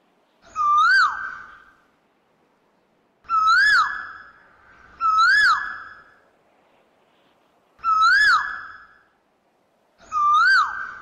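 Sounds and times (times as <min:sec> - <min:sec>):
Asian koel giving loud whistled calls: 0:00.4 - 0:01.8, 0:03.3 - 0:06.2, 0:07.8 - 0:09.0, 0:10.0 - 0:11.0.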